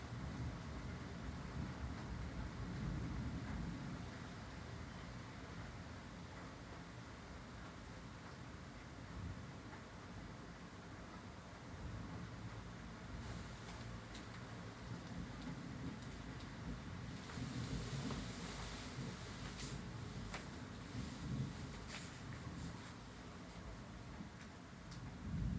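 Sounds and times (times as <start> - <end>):
rain in stormy weather in South London: 0.0 - 25.5
low rolling rumble of thunder in South London: 25.2 - 25.5.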